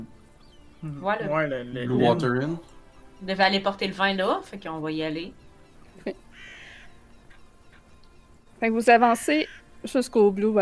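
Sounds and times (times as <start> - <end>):
speech: 0.8 - 5.4, 6.0 - 6.2, 8.6 - 10.6
crows cawing from a building rooftop above a deserted street: 6.0 - 7.9, 9.2 - 9.8.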